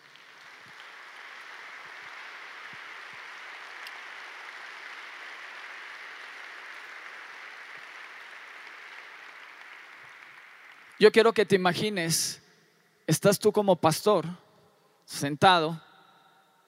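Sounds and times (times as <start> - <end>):
audience applause: 0.0 - 11.2
speech: 11.0 - 12.4, 13.1 - 14.4, 15.1 - 15.8.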